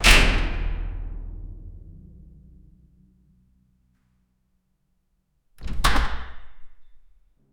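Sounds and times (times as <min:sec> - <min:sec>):
heavy metal door slamming shut with a resonant boom: 0:00.0 - 0:03.6, 0:05.6 - 0:06.8.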